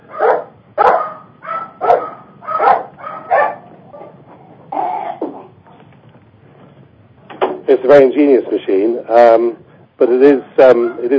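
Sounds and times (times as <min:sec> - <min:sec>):
dog barking: 0:00.1 - 0:04.2, 0:10.8 - 0:11.1
speech: 0:07.7 - 0:11.1.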